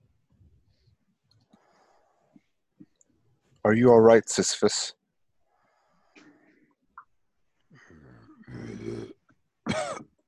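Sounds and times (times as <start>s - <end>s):
speech: 3.6s - 5.0s
man coughing up muddy water: 9.6s - 10.2s.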